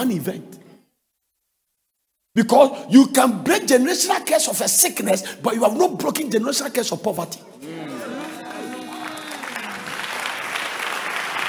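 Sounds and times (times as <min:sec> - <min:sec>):
speech: 0:00.0 - 0:00.6, 0:02.4 - 0:07.9
raised voices calling out: 0:07.6 - 0:09.9
audience clapping: 0:07.6 - 0:11.4.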